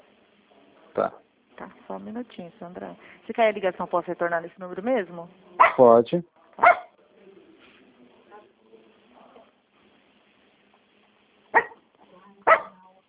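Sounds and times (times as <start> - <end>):
speech: 1.0 - 6.7
small dog barking: 5.6 - 5.8, 6.6 - 6.9, 11.6 - 11.8, 12.4 - 12.8.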